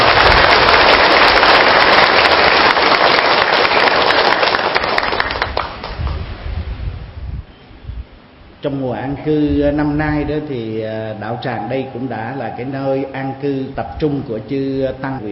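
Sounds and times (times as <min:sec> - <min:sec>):
large crowd applauding: 0:00.0 - 0:06.2
speech: 0:08.6 - 0:15.3.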